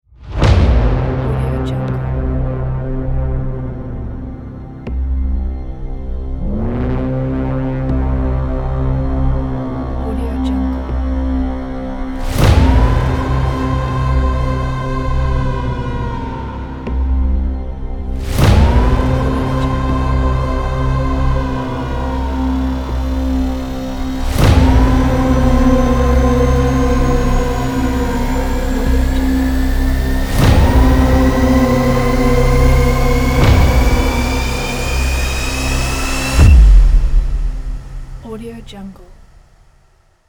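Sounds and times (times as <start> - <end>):
dark suspense cinematic trailer drone: 0.3 - 39.8.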